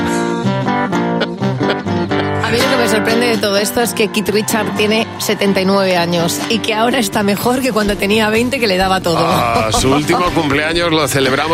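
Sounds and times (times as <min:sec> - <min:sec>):
rock riff strummed on a Spanish guitar: 0:00.0 - 0:11.5
laughter: 0:01.2 - 0:02.8, 0:09.1 - 0:10.8
speech: 0:02.8 - 0:11.5.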